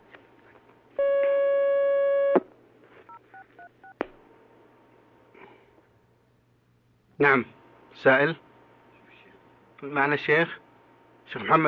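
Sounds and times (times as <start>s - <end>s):
telephone line buzzing tone on a phone-in question line: 1.0s - 2.4s
speech: 7.2s - 8.4s, 9.8s - 10.6s, 11.3s - 11.6s.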